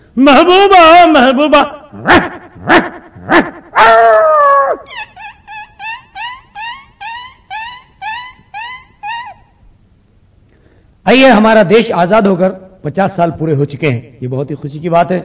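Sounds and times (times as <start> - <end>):
speech: 0.2 - 4.0, 11.1 - 15.2
performer's voice imitating yelps of a dog struck by a stone: 1.9 - 9.5.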